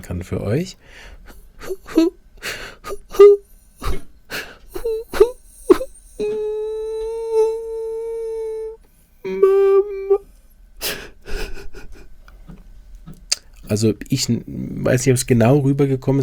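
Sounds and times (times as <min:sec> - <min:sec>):
speech: 0:00.0 - 0:03.3, 0:13.7 - 0:16.2
voice imitating a child's pitiful crying and sobbing: 0:01.6 - 0:12.1.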